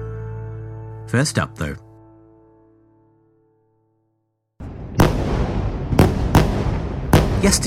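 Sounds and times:
speech: 0:01.1 - 0:01.9, 0:07.5 - 0:07.6
tank and artillery shell blasts during a bombardment of Gaza: 0:04.6 - 0:07.6.

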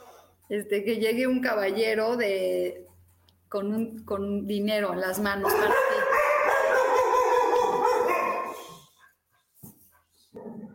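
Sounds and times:
speech: 0:00.5 - 0:02.9, 0:03.5 - 0:06.0
several dogs barking and yelping: 0:05.4 - 0:08.8.

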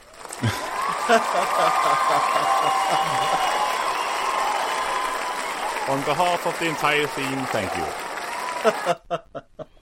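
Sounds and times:
crowd clapping: 0:00.0 - 0:09.1
laughter: 0:00.3 - 0:09.8
speech: 0:00.4 - 0:03.7, 0:05.9 - 0:09.8
whoops: 0:00.4 - 0:06.0, 0:07.6 - 0:09.0.

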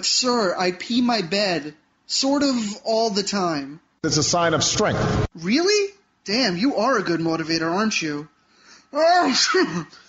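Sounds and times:
speech: 0:00.0 - 0:08.3, 0:08.9 - 0:10.0
loud sneeze with voiced build-up: 0:09.2 - 0:09.9.

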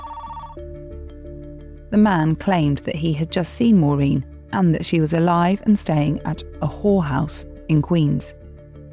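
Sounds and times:
telephone ringing with an electronic tone: 0:00.0 - 0:00.6
speech: 0:01.9 - 0:08.4.

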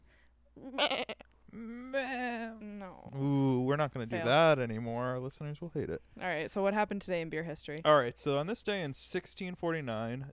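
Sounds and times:
speech: 0:00.6 - 0:02.1, 0:03.1 - 0:10.3
person imitating a goat bleating: 0:00.6 - 0:02.9.

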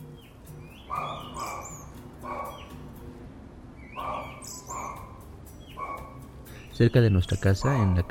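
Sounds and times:
small birds chirping outdoors in the morning: 0:00.0 - 0:08.1
dog yipping and barking: 0:00.7 - 0:02.8, 0:03.9 - 0:06.3, 0:07.6 - 0:08.1
speech: 0:06.8 - 0:08.1.

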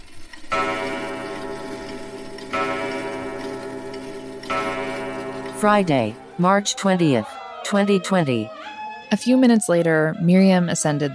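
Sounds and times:
clock striking midnight with deep resonant chimes: 0:00.5 - 0:07.2
speech: 0:05.6 - 0:11.1.

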